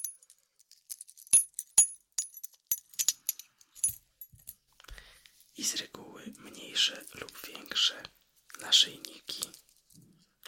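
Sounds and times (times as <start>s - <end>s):
bunch of keys jingling: 0.0s - 4.6s
speech: 6.8s - 9.7s.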